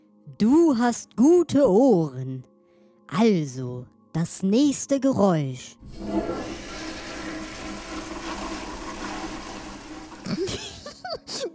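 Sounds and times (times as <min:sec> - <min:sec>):
speech: 0:00.4 - 0:02.5, 0:03.1 - 0:06.4
toilet flushing: 0:05.8 - 0:10.9.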